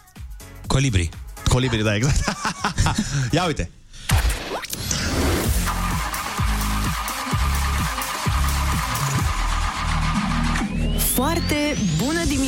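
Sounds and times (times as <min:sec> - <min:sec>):
speech: 0:00.8 - 0:03.8, 0:11.2 - 0:12.4
laughter: 0:01.7 - 0:03.4
whining car starter motor: 0:04.7 - 0:12.4
car engine cranking without catching: 0:05.4 - 0:11.2.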